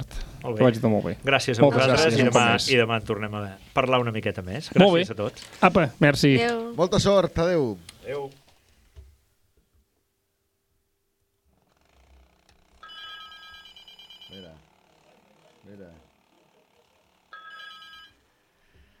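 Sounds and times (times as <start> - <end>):
speech: 0.4 - 8.4
telephone ringing: 12.8 - 14.8, 17.2 - 18.4.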